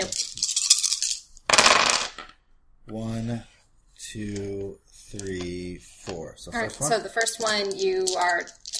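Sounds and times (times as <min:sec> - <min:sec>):
dice thrown and clattering: 0:00.0 - 0:02.4, 0:06.6 - 0:08.7
speech: 0:02.9 - 0:08.7.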